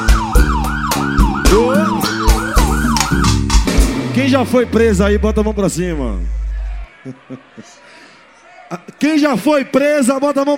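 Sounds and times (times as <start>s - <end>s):
siren sound effect in live dance music: 0.0s - 3.6s, 4.7s - 6.9s
pounding bass beat and drums in a live Brazilian dance-music recording: 0.0s - 6.9s
speech: 4.3s - 6.4s, 7.0s - 7.9s, 8.7s - 10.5s
laughter: 6.5s - 9.0s.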